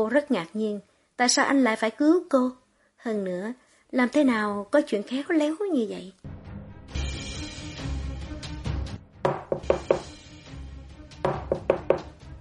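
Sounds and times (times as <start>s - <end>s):
speech: 0.0s - 6.3s
knocking on a door from outside: 9.2s - 10.2s, 11.2s - 12.2s.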